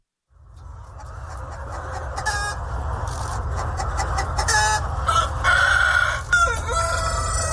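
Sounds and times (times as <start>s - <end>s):
Vietnamese dragon chickens clucking on a farm: 0.4s - 7.5s
Vietnamese dragon rooster crowing on a farm: 4.7s - 7.5s.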